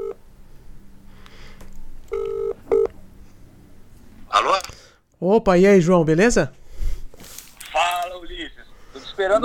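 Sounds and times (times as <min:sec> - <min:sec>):
electronic telephone beeps of a phone being dialed: 0:02.1 - 0:02.9
speech: 0:05.2 - 0:06.6, 0:09.2 - 0:09.4.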